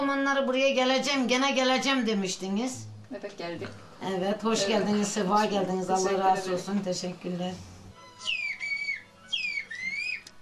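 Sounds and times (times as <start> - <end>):
speech: 0.1 - 8.4
names whistled in a whistle language: 8.2 - 10.3.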